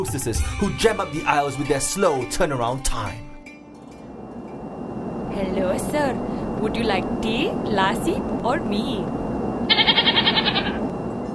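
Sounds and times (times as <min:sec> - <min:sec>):
speech: 0:00.0 - 0:03.3, 0:05.4 - 0:09.2
low steady hum: 0:03.4 - 0:11.3
goat bleating: 0:09.7 - 0:10.8.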